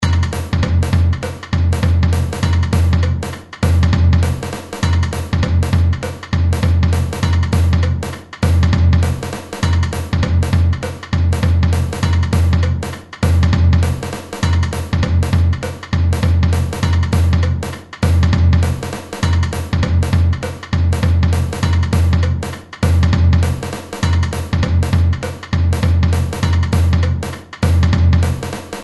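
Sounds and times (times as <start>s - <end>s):
caixa snare drum in a samba breakdown: 0.0s - 28.8s.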